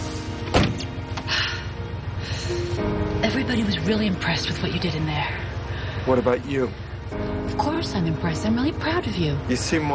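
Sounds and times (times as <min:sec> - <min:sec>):
low idling hum: 0:00.0 - 0:09.9
car door shutting: 0:00.4 - 0:01.4
speech: 0:03.4 - 0:09.9.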